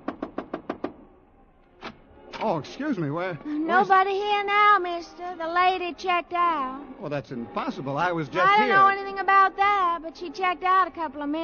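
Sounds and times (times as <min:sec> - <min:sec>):
knocking on a hotel room door: 0:00.0 - 0:01.0
speech: 0:02.4 - 0:11.4.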